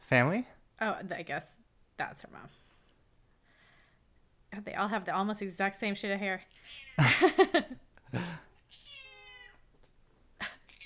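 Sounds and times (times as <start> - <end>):
speech: 0.1 - 2.7, 4.5 - 8.4
cat meowing: 6.5 - 7.0, 8.7 - 9.7.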